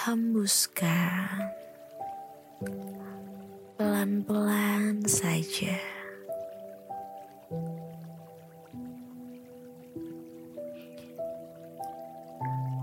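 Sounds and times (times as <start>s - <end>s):
speech: 0.0s - 1.7s, 2.6s - 6.0s, 7.5s - 7.7s
water dripping with a clear ringing tone after rain stops: 0.0s - 12.8s.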